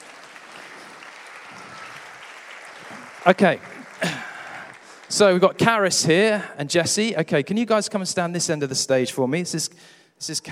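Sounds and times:
audience crowd applauding: 0.0s - 6.1s
speech: 3.2s - 4.2s, 5.1s - 10.4s.

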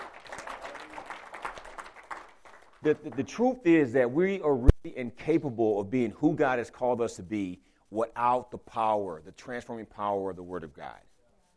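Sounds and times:
crowd applauding a woman: 0.0s - 3.3s
speech: 2.8s - 11.1s.

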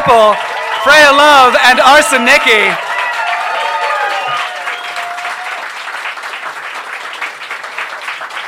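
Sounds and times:
speech: 0.0s - 2.9s
audience cheers and whoops: 0.0s - 5.8s
audience clapping: 0.0s - 8.4s.

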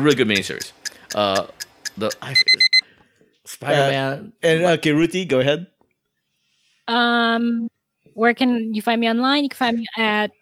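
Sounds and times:
speech: 0.0s - 2.7s, 3.5s - 5.7s, 6.9s - 10.4s
timer alarm high-pitched electronic beeps: 0.0s - 2.9s.

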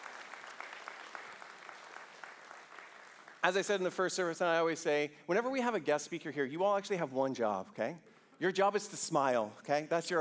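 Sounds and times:
crowd at a morning service applauding a guest speaker: 0.0s - 3.7s
speech: 3.4s - 10.1s.

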